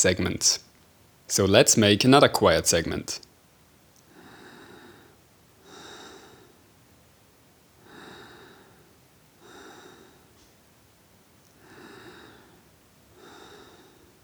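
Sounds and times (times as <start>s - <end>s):
speech: 0.0s - 0.7s, 1.3s - 3.3s
heavy rasping breaths close to the microphone: 4.1s - 6.6s, 7.8s - 10.4s, 11.6s - 14.2s.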